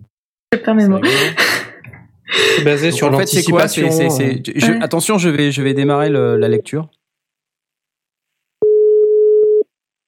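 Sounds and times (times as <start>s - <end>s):
speech: 0.7s - 1.6s, 2.4s - 7.0s
telephone ringback tone: 8.6s - 9.6s.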